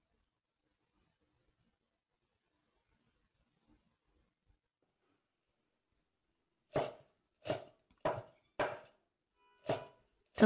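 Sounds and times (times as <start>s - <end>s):
knife chopping vegetables on a cutting board: 6.7s - 9.0s, 9.6s - 10.0s.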